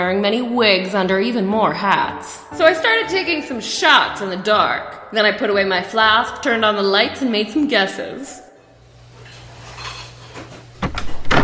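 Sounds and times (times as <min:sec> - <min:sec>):
speech: 0:00.0 - 0:08.4
kitchen clatter of dishes and utensils: 0:09.1 - 0:11.4.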